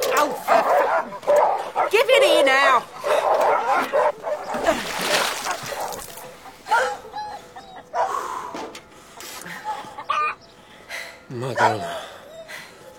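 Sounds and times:
dog barking in a city: 0.0 - 8.5, 11.5 - 12.0
splashing: 4.3 - 6.5.

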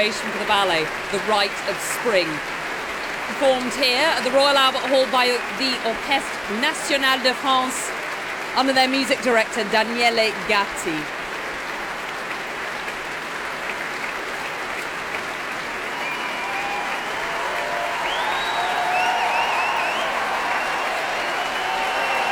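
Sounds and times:
speech: 0.0 - 2.6, 3.3 - 7.9, 8.5 - 11.2
large concert hall audience applauding after an orchestral performance: 0.0 - 22.2
faint whistles or cheers from the audience: 15.4 - 22.2.

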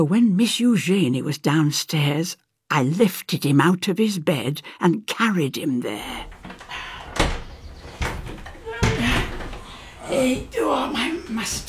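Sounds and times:
speech: 0.0 - 6.4, 10.1 - 11.6
heavy strong room door clunking and rattling: 6.0 - 11.6
faint metallic creak of heavy door: 6.1 - 11.6.

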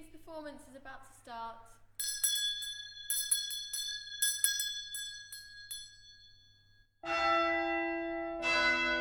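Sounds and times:
speech: 0.3 - 1.8
bright bell ringing: 2.0 - 8.9.

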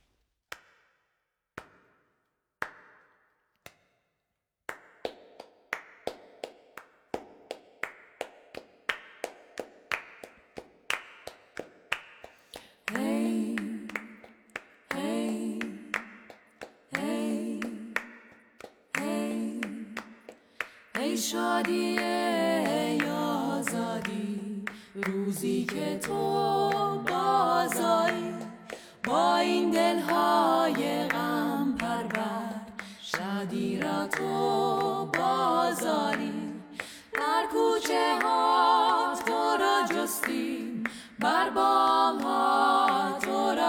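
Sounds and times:
rhythmic hand clapping: 0.5 - 4.0, 4.7 - 43.6
singers from Iran and Serbia singing in harmony: 12.8 - 18.3, 18.9 - 43.6
speech: 21.2 - 22.2, 25.0 - 28.3.

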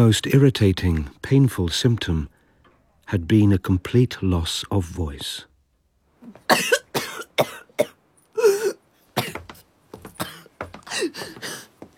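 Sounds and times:
speech: 0.0 - 2.4, 3.1 - 5.5, 6.3 - 6.8, 7.4 - 7.9
person coughing harshly: 6.2 - 9.5, 10.2 - 11.4
person gasping: 10.8 - 11.7.

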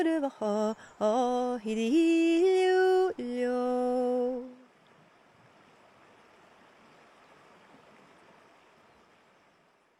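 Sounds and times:
speech: 0.0 - 4.5
River Bewley near Inverness flowing: 0.0 - 9.9.

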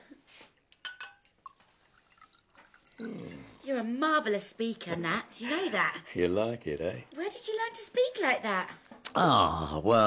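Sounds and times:
glasses clinking: 0.8 - 3.5
drink being poured and dripping: 1.0 - 3.6
speech: 3.0 - 10.0.

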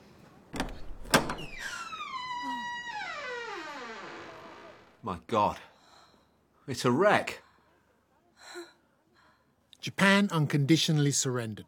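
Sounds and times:
latch clunking: 0.5 - 1.7
door swinging open on a creaking hinge: 0.6 - 5.0
speech: 5.0 - 5.7, 6.7 - 7.4, 9.8 - 11.6.

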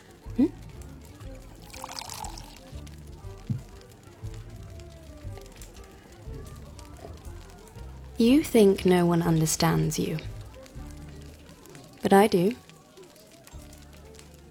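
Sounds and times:
voices talking quietly: 0.0 - 14.4
speech: 0.4 - 0.6, 8.2 - 10.3, 12.1 - 12.6
drink being poured into a glass: 1.6 - 2.8.

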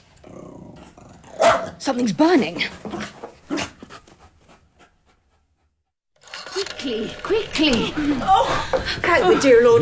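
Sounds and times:
dog barking: 1.4 - 1.8
speech: 1.7 - 3.2, 6.9 - 9.7.

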